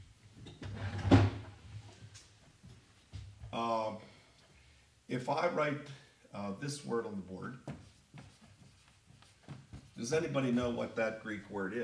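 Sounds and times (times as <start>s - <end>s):
drawer holding markers sliding open with a rattle: 0.6s - 1.5s
speech: 5.2s - 7.8s, 10.0s - 11.8s.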